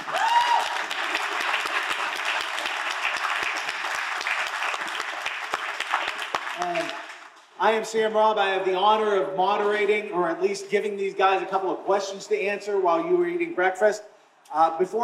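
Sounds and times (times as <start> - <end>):
audience applause welcoming a speaker at an event: 0.0 - 7.4
speech: 7.6 - 15.0.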